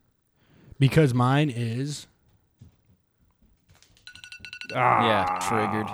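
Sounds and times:
speech: 0.8 - 2.1, 4.7 - 5.9
phone alarm ringtone with rapidly pulsing electronic beeps: 4.1 - 4.8.

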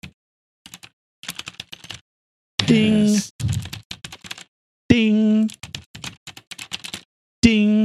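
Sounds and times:
typing on a clicky mechanical keyboard: 0.7 - 2.0, 2.6 - 4.5, 5.5 - 7.1
speech: 2.7 - 3.7, 4.9 - 5.6.

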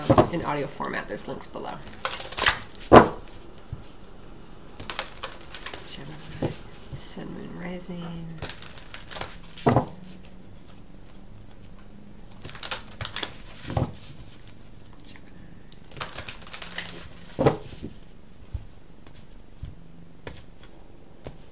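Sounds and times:
speech: 0.1 - 2.2, 5.9 - 6.6, 7.2 - 8.6
deck of cards being shuffled for a reading: 1.8 - 7.4, 8.1 - 15.2, 15.8 - 21.5
person speaking quietly: 5.8 - 8.5.

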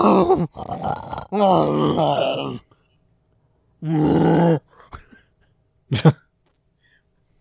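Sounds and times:
grunting and groaning sex noises from a horror film: 0.0 - 2.8, 3.8 - 4.9.

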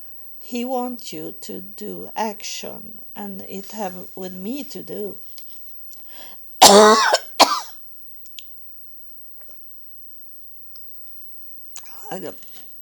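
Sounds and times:
speech: 0.5 - 5.4, 6.2 - 7.2, 12.1 - 12.6
coughing: 6.6 - 7.7
rough throat clearing: 6.6 - 7.7.

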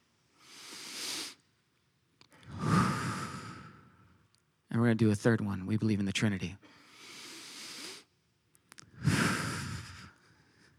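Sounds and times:
person breathing in through the nose and out through the mouth: 0.4 - 1.4, 2.3 - 4.2, 6.6 - 8.1, 8.8 - 10.7
speech: 4.8 - 6.8.

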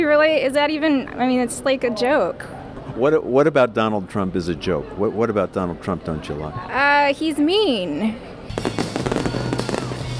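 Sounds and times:
speech: 0.0 - 9.0
fireworks in Tulsa Oklahoma popping and crackling: 8.5 - 10.1.

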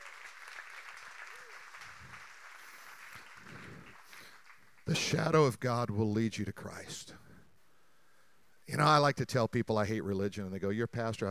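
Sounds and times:
audience applauding during a sermon: 0.0 - 5.6
speech: 4.9 - 7.2, 8.7 - 11.3.

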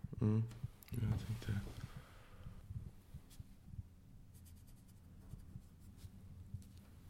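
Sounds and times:
speech: 0.2 - 1.9
black felt-tip marker scratching across paper: 4.3 - 6.2.

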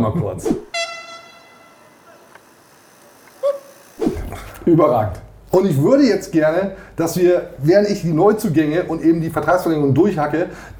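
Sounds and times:
speech: 0.0 - 0.7, 4.6 - 10.7
long steady horn blast: 0.7 - 2.2.

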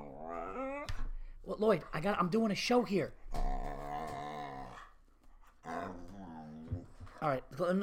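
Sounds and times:
dog growling: 0.0 - 1.0, 3.3 - 5.0, 5.6 - 7.1
speech: 1.5 - 3.2, 7.2 - 7.8.

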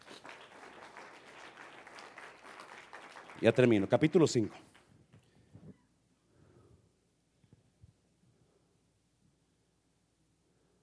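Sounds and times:
large crowd applauding loudly: 0.0 - 4.9
speech: 3.4 - 4.7.

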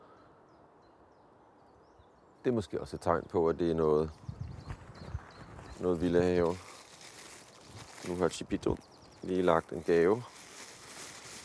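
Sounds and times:
steady outdoor noise: 0.0 - 11.4
great tit singing: 0.5 - 6.8, 8.1 - 10.0
speech: 2.4 - 4.4, 5.8 - 6.7, 8.0 - 10.4.

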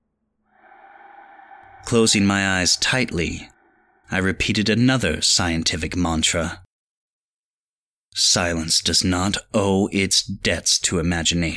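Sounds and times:
wheezing gasp heard through a window pane: 0.5 - 4.2
speech: 1.8 - 3.5, 4.1 - 6.6, 8.2 - 11.5.

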